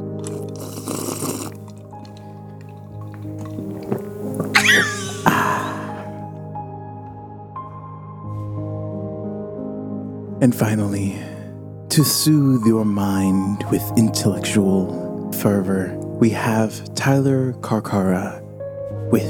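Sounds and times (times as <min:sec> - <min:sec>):
wet gulp of water: 0:00.0 - 0:06.2
speech: 0:10.4 - 0:11.3, 0:12.0 - 0:18.4.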